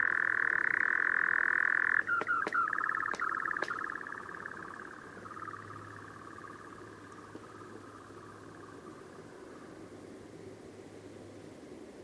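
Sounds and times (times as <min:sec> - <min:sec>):
European nightjar Caprimulgus europaeus churring: 0:00.0 - 0:08.8
sharp clicks: 0:02.0 - 0:04.1.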